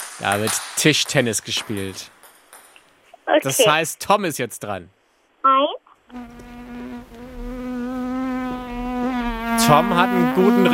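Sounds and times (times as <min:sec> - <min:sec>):
speech: 0:00.2 - 0:02.2, 0:03.3 - 0:05.8, 0:09.7 - 0:10.7
housefly buzzing: 0:06.1 - 0:10.7.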